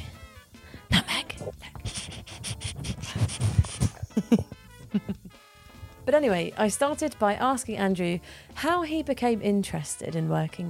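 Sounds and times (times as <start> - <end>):
dog panting: 1.7 - 4.2
laughter: 3.9 - 5.3
speech: 6.1 - 10.6.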